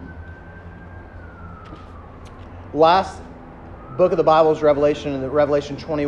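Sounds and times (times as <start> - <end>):
emergency siren wailing: 0.0 - 6.0
speech: 2.7 - 3.3, 4.0 - 6.0.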